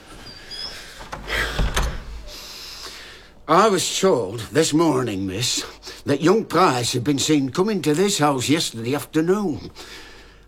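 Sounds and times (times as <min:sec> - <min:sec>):
door pushed shut with scrape, rattle and thump: 0:01.0 - 0:02.3
speech: 0:03.5 - 0:10.1.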